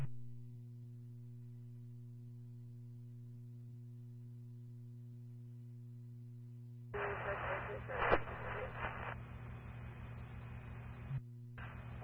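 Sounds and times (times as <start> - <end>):
steady electrical hum: 0.0 - 12.0
garbled radio transmission from a unit on the command channel: 7.0 - 9.2, 9.8 - 12.0
harsh radio static: 7.0 - 12.0.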